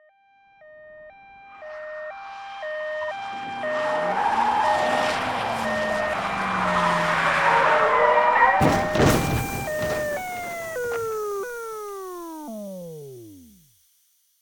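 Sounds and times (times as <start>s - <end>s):
siren approaching: 0.0s - 13.6s
crash: 8.6s - 13.4s.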